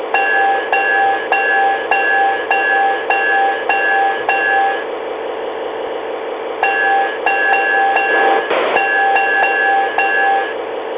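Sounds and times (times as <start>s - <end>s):
diesel engine: 0.1s - 10.8s.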